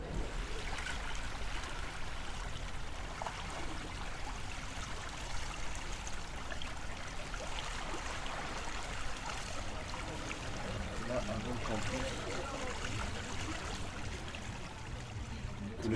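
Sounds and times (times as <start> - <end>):
water of the Isère river flowing: 0.0 - 15.9.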